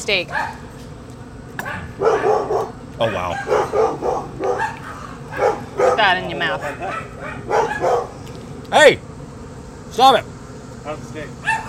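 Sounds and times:
speech: 0.0s - 0.7s, 1.6s - 4.8s, 5.4s - 8.1s, 8.7s - 9.1s, 9.9s - 11.6s
dogs barking: 0.2s - 0.8s, 1.6s - 8.2s, 11.4s - 11.6s.

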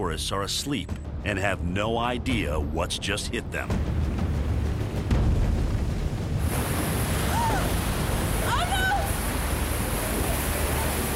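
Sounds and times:
speech: 0.0s - 4.0s
rushing river floodwater: 4.5s - 11.1s.

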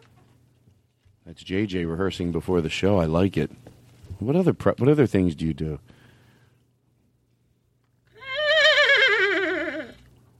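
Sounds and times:
speech: 1.3s - 6.0s
person imitating a horse whinny: 8.1s - 10.1s.

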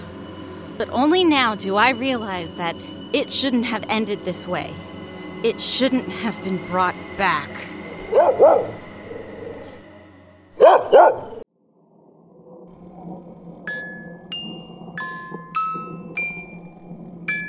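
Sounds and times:
low hum: 0.0s - 17.4s
speech: 0.8s - 8.8s
dog barking: 8.0s - 8.8s, 10.6s - 11.4s.

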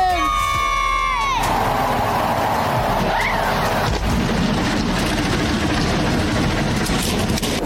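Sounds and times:
crowd cheering: 0.0s - 5.0s
race car engines starting up and revving: 1.3s - 7.6s.

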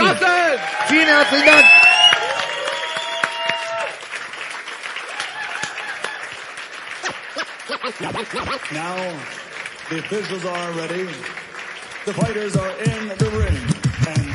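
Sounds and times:
scattered cheers or voices: 0.0s - 14.3s
sustained applause from a large audience: 0.0s - 14.3s
speech: 0.9s - 1.8s, 8.0s - 14.3s
laughter: 7.0s - 9.2s.

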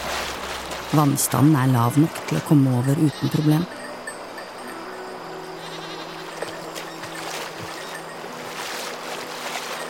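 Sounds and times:
steady rushing of river water: 0.0s - 1.4s, 3.7s - 9.8s
speech: 0.9s - 3.8s
goats on a rise in a river bleating: 5.6s - 6.5s.

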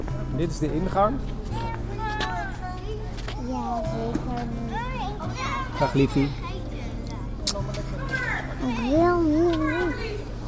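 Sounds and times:
speech: 0.4s - 1.6s, 5.8s - 6.4s, 8.6s - 10.0s
children calling and chattering on a school playground: 1.3s - 10.4s
high wavering child's voice: 1.6s - 7.0s, 8.2s - 10.2s.

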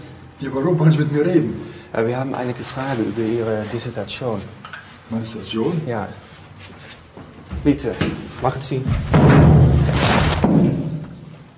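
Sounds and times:
speech: 0.4s - 6.8s, 7.6s - 9.6s
door slamming shut: 8.9s - 11.0s.

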